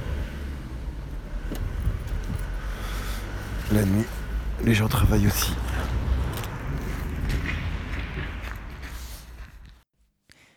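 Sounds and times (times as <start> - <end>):
truck engines rumbling while being parked on a city street: 0.0 - 9.8
speech: 3.7 - 6.0.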